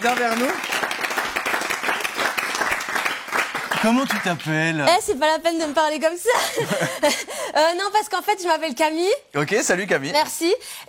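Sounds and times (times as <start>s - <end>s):
speech: 0.0s - 0.8s, 3.8s - 10.8s
applause as a newcomer is welcomed to a table: 0.0s - 5.0s.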